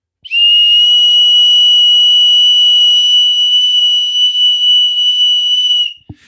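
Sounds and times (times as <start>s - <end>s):
dog whistle high-pitched tone: 0.2s - 6.0s.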